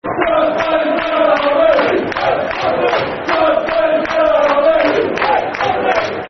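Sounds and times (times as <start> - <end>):
football crowd chanting a soccer song: 0.0 - 6.2.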